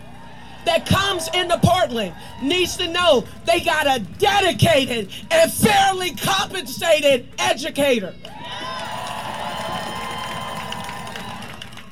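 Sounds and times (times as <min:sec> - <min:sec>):
outdoor rally crowd of thousands cheering and chattering in Portland: 0:00.0 - 0:05.0, 0:08.0 - 0:11.8
speech: 0:00.6 - 0:08.4.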